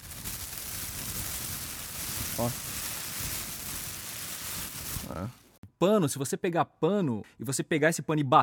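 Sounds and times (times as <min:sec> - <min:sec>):
plastic supermarket bag crumpled to mimic fire: 0:00.0 - 0:05.6
speech: 0:02.4 - 0:02.7, 0:05.2 - 0:08.4.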